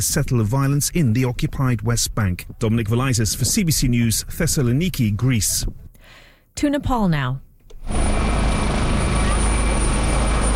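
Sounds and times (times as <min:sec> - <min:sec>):
speech: 0:00.0 - 0:07.5
helicopter rotor thudding overhead: 0:07.7 - 0:10.5
helicopter high whine: 0:07.8 - 0:10.5.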